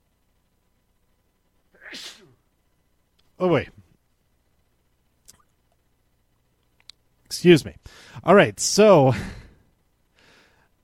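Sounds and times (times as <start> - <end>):
person sneezing: 1.8 - 2.4
speech: 3.4 - 3.8, 7.4 - 9.4.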